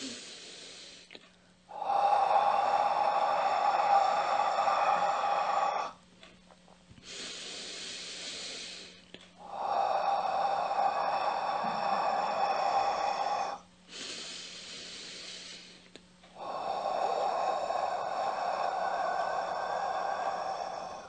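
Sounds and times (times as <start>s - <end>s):
person chanting the letter H as long breathy exhalations in a mantra: 0.0s - 6.0s, 7.0s - 21.0s.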